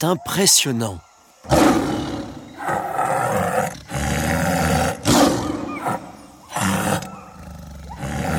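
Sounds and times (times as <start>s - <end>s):
speech: 0.0s - 1.9s
lion roaring: 1.4s - 8.3s.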